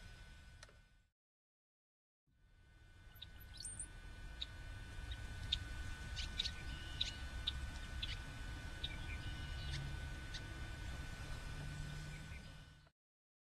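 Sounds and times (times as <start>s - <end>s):
steady low hum and rumbling background noise: 2.4s - 12.9s
many birds chirping in the morning: 3.1s - 12.9s.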